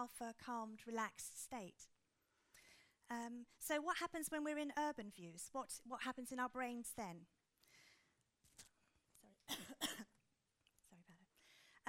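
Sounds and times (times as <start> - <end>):
speech: 0.0 - 1.9, 3.1 - 7.9
faint breathy noises: 2.2 - 3.0, 7.6 - 8.2, 11.4 - 11.8
muffled coughs away from microphone: 9.5 - 10.2.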